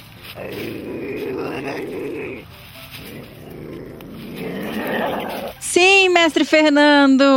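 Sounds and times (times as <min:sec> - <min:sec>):
ocelot calling: 0:00.0 - 0:05.6
speech: 0:05.7 - 0:07.3.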